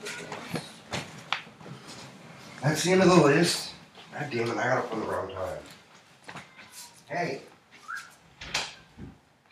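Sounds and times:
speech: 0:02.6 - 0:05.8, 0:07.1 - 0:07.5
pet cat meowing: 0:06.3 - 0:07.1.

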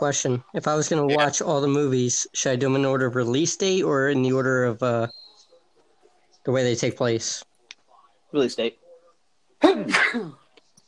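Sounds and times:
speech: 0:00.0 - 0:05.2, 0:06.4 - 0:07.5, 0:08.3 - 0:08.8, 0:09.6 - 0:10.4
person sneezing: 0:09.6 - 0:10.4.

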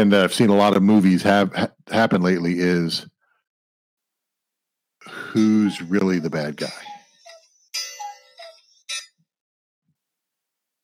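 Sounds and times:
speech: 0:00.0 - 0:03.1, 0:05.3 - 0:06.9
phone alarm sounding like a cuckoo clock: 0:05.3 - 0:09.1.

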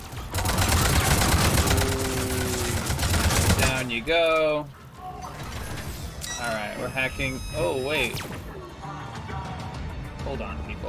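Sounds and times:
rapid gunfire in a video game: 0:00.0 - 0:03.9
speech: 0:04.0 - 0:04.8, 0:06.4 - 0:08.5, 0:10.2 - 0:10.8.

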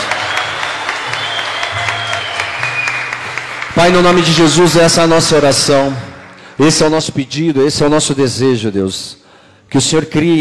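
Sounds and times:
audience applauding: 0:00.0 - 0:07.3
speech: 0:03.8 - 0:10.3.

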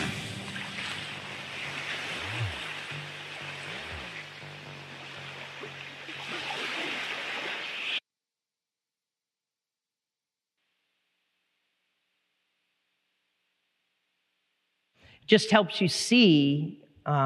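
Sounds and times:
low boat engine drone: 0:00.0 - 0:06.9
rough ocean water surging and roaring around a small boat: 0:00.0 - 0:08.0
speech: 0:15.2 - 0:17.2.

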